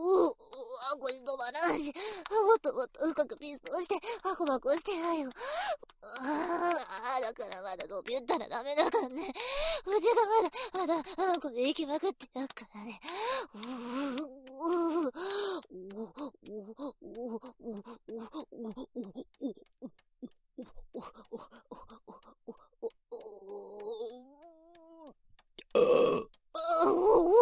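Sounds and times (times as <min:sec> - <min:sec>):
speech: 0:00.9 - 0:22.6, 0:25.8 - 0:27.4
person making throaty burp-like croaks and grunts: 0:25.7 - 0:26.4.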